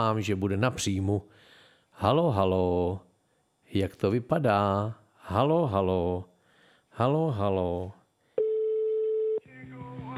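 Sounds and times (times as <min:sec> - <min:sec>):
speech: 0:00.0 - 0:03.1, 0:03.7 - 0:06.3, 0:07.0 - 0:08.0
telephone ringback tone while a call is being placed: 0:08.4 - 0:09.5.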